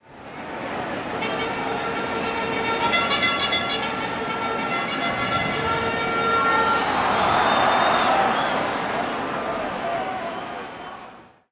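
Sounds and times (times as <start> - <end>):
baseball crowd chanting a charge: 0.4 - 11.5.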